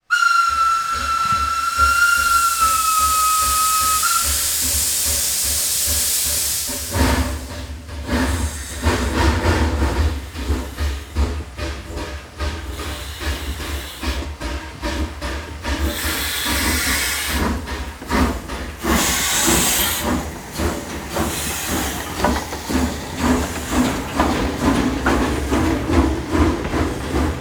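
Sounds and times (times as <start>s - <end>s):
steam locomotive whistle: 0.0s - 5.2s
steam locomotive departing: 0.0s - 27.4s.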